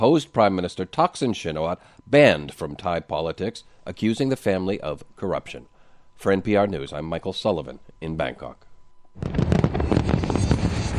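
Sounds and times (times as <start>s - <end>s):
speech: 0.0s - 8.6s, 9.2s - 9.9s
fireworks bursting over a harbour at Chinese New Year in Hong Kong: 9.2s - 10.9s.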